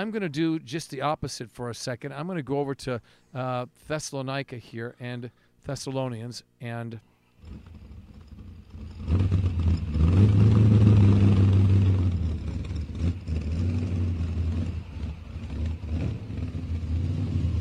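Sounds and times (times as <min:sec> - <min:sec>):
speech: 0:00.0 - 0:07.8
race car engine revving: 0:07.4 - 0:17.5.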